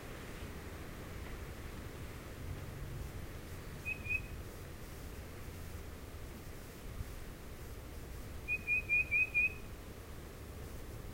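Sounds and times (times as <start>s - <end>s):
soft background hiss: 0.0s - 11.1s
tufted titmouse whistles: 3.8s - 4.3s, 8.5s - 9.6s.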